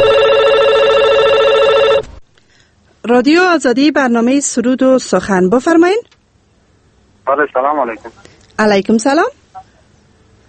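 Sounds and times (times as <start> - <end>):
telephone ringing with electronic trill: 0.0 - 2.1
speech: 3.1 - 6.1, 7.3 - 9.4.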